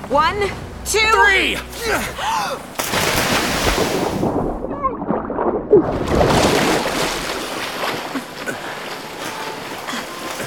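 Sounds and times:
churning rushing water from a ship sinking in a fjord: 0:00.0 - 0:10.4
speech: 0:00.1 - 0:03.0, 0:05.7 - 0:06.7
deep rumbling booms of a sinking ship: 0:02.9 - 0:06.5.

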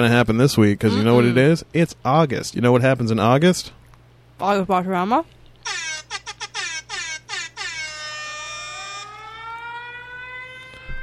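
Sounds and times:
speech: 0:00.0 - 0:03.8, 0:04.4 - 0:05.8
siren wailing: 0:05.7 - 0:11.0.

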